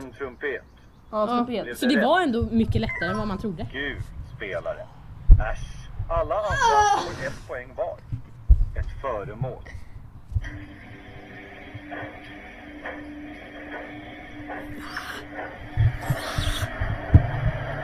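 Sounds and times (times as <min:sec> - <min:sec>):
speech: 0:00.6 - 0:08.1, 0:09.0 - 0:09.8
washing machine running: 0:10.4 - 0:17.8.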